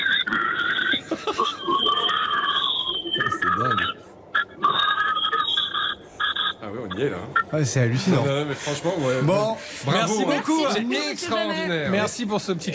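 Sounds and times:
person imitating pig squealing: 0.0 - 7.6
laughter: 0.9 - 2.3
speech: 7.0 - 12.7.

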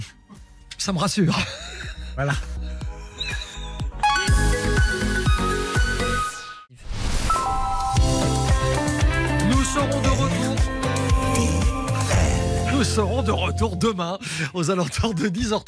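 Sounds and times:
speech: 0.8 - 1.6, 2.2 - 2.5, 12.8 - 15.6
radio station jingle with layered synths and beats: 4.0 - 14.7.

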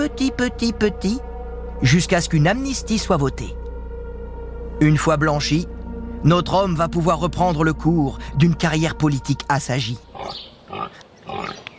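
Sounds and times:
speech: 0.0 - 3.6, 4.8 - 10.4
pig grunting and oinking: 10.1 - 11.7.

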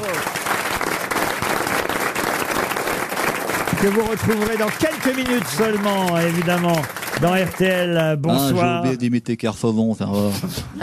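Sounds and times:
audience applause: 0.0 - 8.4
speech: 3.8 - 10.8.

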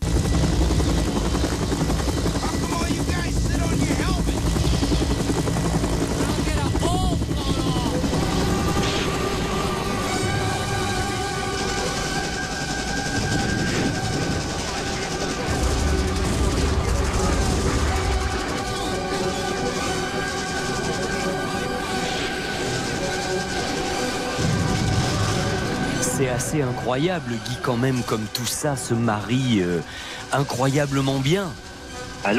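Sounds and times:
helicopter rotor noise: 0.0 - 32.3
sustained musical tones: 0.0 - 32.3
speech: 26.6 - 31.6.

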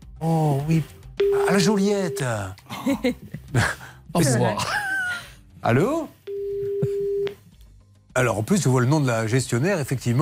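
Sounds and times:
speech: 0.2 - 4.8, 5.6 - 6.2, 8.2 - 10.2
telephone ringback tone on an outgoing call to an agency near Marseille: 1.2 - 2.4, 6.3 - 7.3.

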